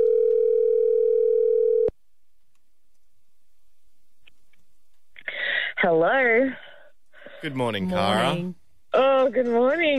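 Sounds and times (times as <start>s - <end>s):
telephone dial tone: 0.0s - 1.9s
speech: 5.8s - 6.6s, 7.4s - 9.9s.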